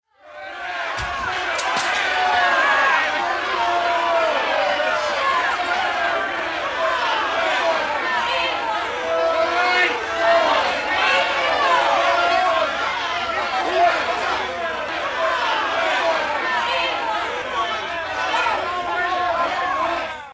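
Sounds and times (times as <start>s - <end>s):
angry crowd: 0.0s - 20.3s.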